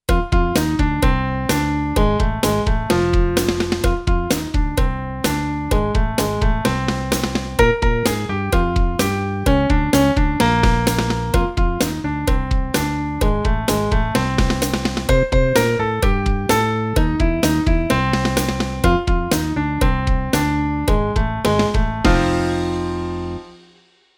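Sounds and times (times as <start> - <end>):
shuffle backbeat: 0.1 - 22.6.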